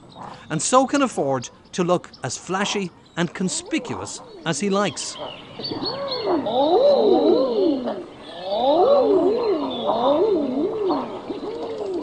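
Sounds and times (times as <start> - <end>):
speech: 0.2 - 11.1
flock of common eider ducks cooing: 2.2 - 12.0.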